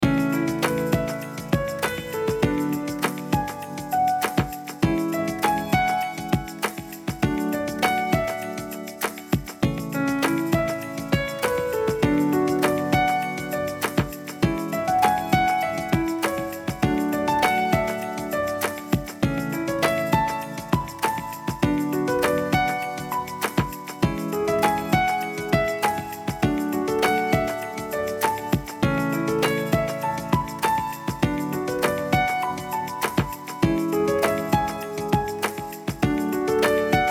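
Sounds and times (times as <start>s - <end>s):
positive and gentle piano song: 0.0s - 37.0s.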